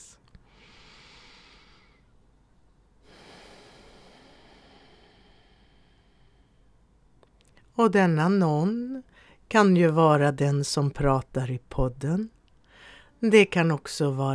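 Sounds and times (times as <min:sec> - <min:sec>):
person breathing slowly with airy inhale and long exhale: 0:00.4 - 0:02.2, 0:03.0 - 0:07.1, 0:12.6 - 0:13.2
speech: 0:07.8 - 0:12.4, 0:13.2 - 0:14.3.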